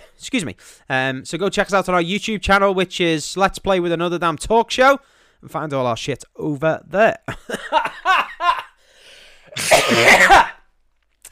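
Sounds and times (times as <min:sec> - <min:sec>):
speech: 0:00.2 - 0:08.6, 0:09.6 - 0:10.4
person coughing: 0:09.5 - 0:10.6.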